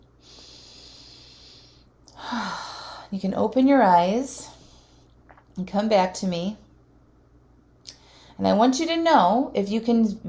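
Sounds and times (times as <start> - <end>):
long deep breath during a guided relaxation exercise: 0.2 - 3.1, 7.9 - 8.4
speech: 3.1 - 4.5, 5.6 - 6.6, 8.4 - 10.2.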